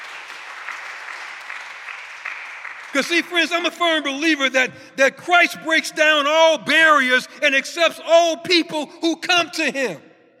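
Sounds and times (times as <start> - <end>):
congregation clapping hands during a church service: 0.0 - 4.8
speech: 2.9 - 10.1.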